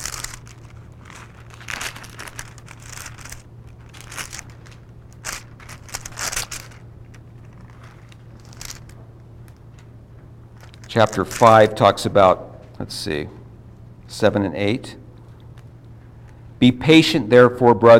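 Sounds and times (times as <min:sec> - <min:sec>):
pages of a book thumbed through: 0:00.0 - 0:09.6, 0:10.6 - 0:11.7
steady low hum: 0:00.0 - 0:14.2
speech: 0:10.9 - 0:13.4, 0:14.1 - 0:15.0, 0:16.6 - 0:17.9.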